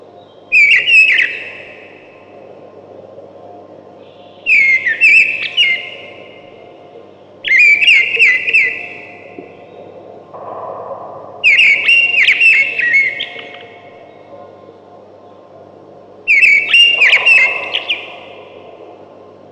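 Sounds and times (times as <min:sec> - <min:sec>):
faint low hum: 0:00.0 - 0:19.5
thrush singing loud whistled phrases: 0:00.5 - 0:01.8, 0:04.4 - 0:06.3, 0:07.4 - 0:09.3, 0:11.4 - 0:14.0, 0:16.3 - 0:18.6.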